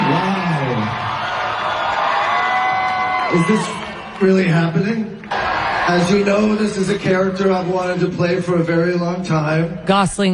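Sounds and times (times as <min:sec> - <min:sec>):
rising whoops from the crowd: 0:00.0 - 0:04.0
large crowd screaming and cheering at a panel: 0:00.0 - 0:08.4
speech: 0:03.3 - 0:05.2, 0:05.9 - 0:10.3.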